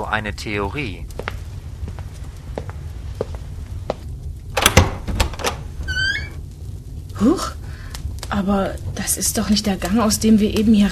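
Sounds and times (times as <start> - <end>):
speech: 0.1 - 1.2, 7.2 - 7.6, 8.4 - 10.9
soft footsteps: 1.1 - 4.4
door latch and handle clatter: 4.6 - 5.6
door hinge creaking: 4.6 - 6.4.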